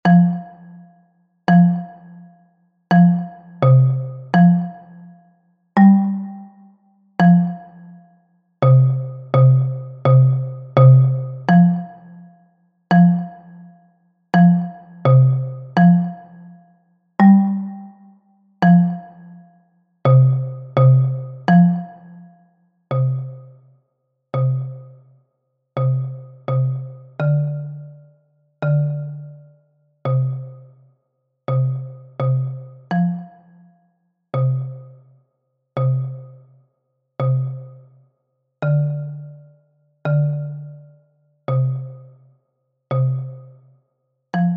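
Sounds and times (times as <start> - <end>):
bass xylophone: 0.0 - 0.8, 1.5 - 2.2, 2.9 - 4.9, 5.8 - 6.5, 7.2 - 7.8, 8.6 - 12.1, 12.9 - 13.6, 14.4 - 16.4, 17.2 - 18.0, 18.6 - 19.3, 20.1 - 22.1, 23.0 - 23.6, 24.4 - 25.0, 25.8 - 29.5, 30.1 - 30.7, 31.6 - 33.3, 34.4 - 35.0, 35.8 - 36.4, 37.2 - 37.8, 38.7 - 39.5, 40.1 - 40.9, 41.5 - 42.1, 43.0 - 43.6, 44.4 - 44.5.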